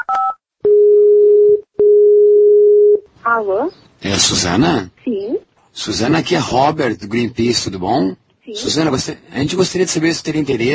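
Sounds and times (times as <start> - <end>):
long steady mid-pitched telephone line tones while placing a call: 0.0 - 3.0
speech: 3.4 - 10.7.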